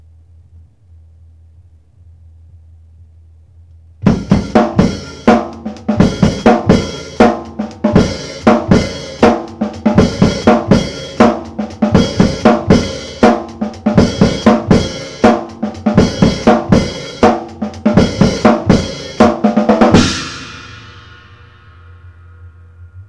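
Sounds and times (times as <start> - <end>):
acoustic beat at 120 BPM: 4.1 - 21.7.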